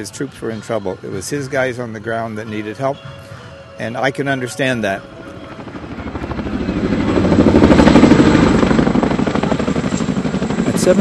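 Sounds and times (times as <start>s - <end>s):
speech: 0.0s - 5.2s, 10.9s - 11.0s
two twin-rotor Chinook helicopters flying slowly overhead: 5.1s - 11.0s.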